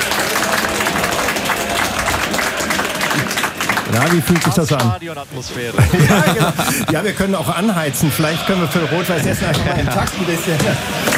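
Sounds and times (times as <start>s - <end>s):
studio audience applause: 0.0s - 5.0s, 5.8s - 7.0s, 9.9s - 11.1s
faint crowd murmur: 0.0s - 11.1s
speech: 4.0s - 11.1s
laughter: 5.6s - 11.1s.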